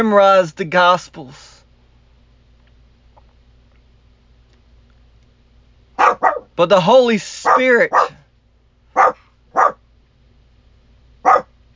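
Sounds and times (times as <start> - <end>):
speech: 0.0 - 1.5, 6.6 - 8.2
female dog barking: 6.0 - 6.5, 7.4 - 8.2, 8.9 - 9.8, 11.2 - 11.5.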